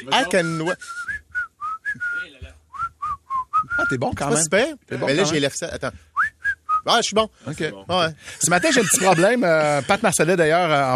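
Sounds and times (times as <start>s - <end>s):
speech: 0.0s - 1.2s, 3.8s - 6.1s, 6.8s - 10.9s
person whistling a quick bouncy tune: 0.2s - 4.0s, 6.0s - 6.9s
laughter: 8.4s - 10.6s.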